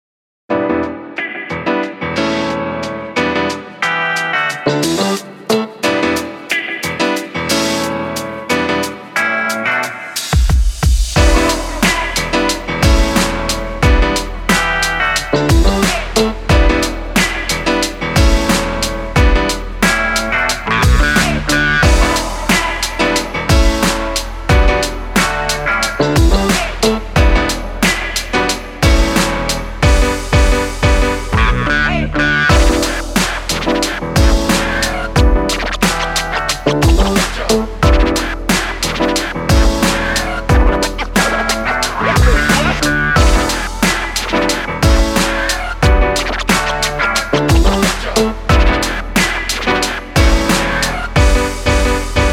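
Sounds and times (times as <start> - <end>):
relaxing lo-fi hip hop music: 0.5 - 52.3.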